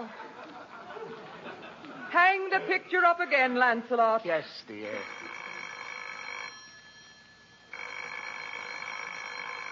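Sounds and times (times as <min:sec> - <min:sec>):
laughter: 0:00.0 - 0:02.9
speech: 0:02.6 - 0:05.3
telephone bell ringing with electric trill: 0:04.8 - 0:09.7.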